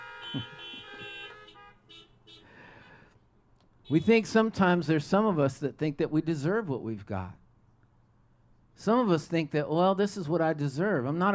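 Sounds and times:
car horn honking: 0.0s - 2.9s, 3.8s - 4.6s
faint street noise: 0.0s - 11.3s
speech: 0.3s - 0.8s, 3.9s - 7.4s, 8.8s - 11.3s.

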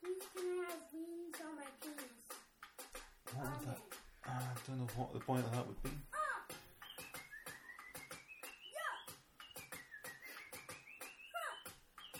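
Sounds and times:
busy clattery background: 0.0s - 12.1s
speech: 3.4s - 6.1s
casual whistled tune: 6.8s - 12.1s.

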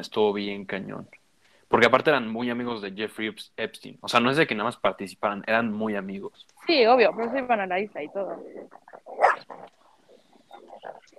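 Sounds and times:
speech: 0.0s - 9.8s
several dogs barking, yelping and snarling in a scuffle: 8.1s - 11.1s.

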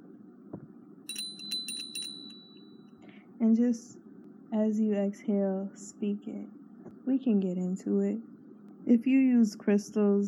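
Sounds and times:
low steady hum: 0.0s - 10.2s
bright high meditation bell ringing: 1.1s - 3.0s
speech: 3.4s - 10.2s.

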